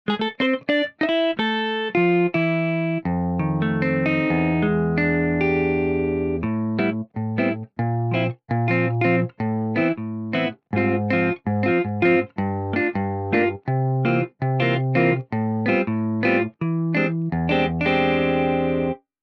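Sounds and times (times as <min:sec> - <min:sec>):
jazz guitar: 0:00.1 - 0:19.1.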